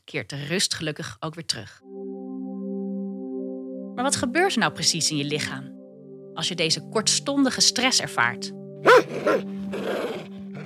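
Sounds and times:
speech: 0.1 - 2.0, 4.0 - 5.8, 6.4 - 10.4
large dog barking: 8.8 - 10.6.

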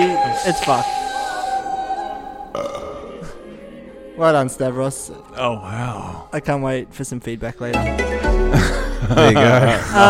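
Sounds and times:
speech: 0.4 - 1.0, 4.2 - 10.0
long loud burp with a tonal rasp: 2.5 - 3.4
laughter: 8.4 - 10.0.

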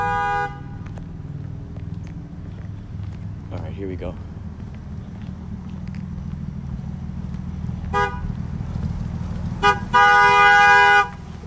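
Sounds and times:
car horn honking: 0.0 - 0.8, 7.9 - 8.3, 9.6 - 11.2
low engine rumble: 0.0 - 11.4
speech: 3.8 - 4.3.

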